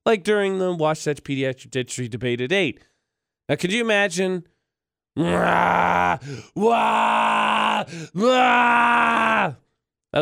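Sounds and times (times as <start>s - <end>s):
speech: 0.1s - 2.9s, 3.5s - 4.5s, 5.2s - 10.2s
person imitating a scream: 5.2s - 9.6s
quick gasping breaths: 6.1s - 6.6s, 7.8s - 8.2s.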